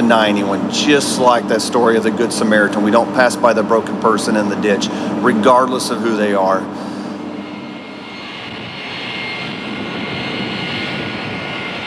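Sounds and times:
loud airplane engine roaring with a droning hum: 0.0 - 11.8
speech: 0.1 - 6.9.

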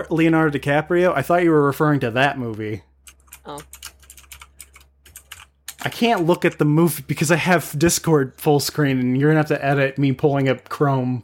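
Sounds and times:
speech: 0.0 - 3.8, 5.8 - 11.2
typing on a computer keyboard: 3.1 - 6.6.

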